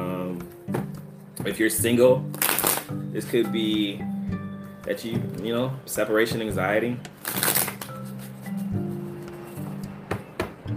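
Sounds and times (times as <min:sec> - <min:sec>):
soft sustained music: 0:00.0 - 0:10.7
speech: 0:01.4 - 0:02.4, 0:03.1 - 0:04.1, 0:04.8 - 0:07.2
tarot card being drawn from a deck: 0:07.2 - 0:08.9.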